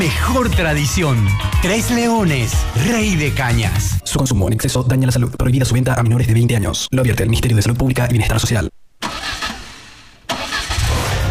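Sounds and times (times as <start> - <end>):
speech: 0.1 - 8.8
pickup truck engine cranking, catching and running: 9.0 - 11.2.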